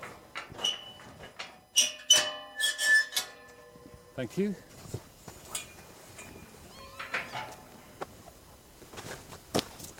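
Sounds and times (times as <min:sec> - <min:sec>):
sheep field gate creaking open with squealing hinge squeaks: 0:00.6 - 0:01.1, 0:01.7 - 0:03.6, 0:05.6 - 0:07.6
speech: 0:04.2 - 0:05.0.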